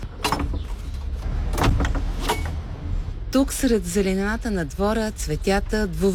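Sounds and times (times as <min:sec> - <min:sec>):
old door creaking open: 0:00.0 - 0:02.7
speech: 0:03.3 - 0:06.1.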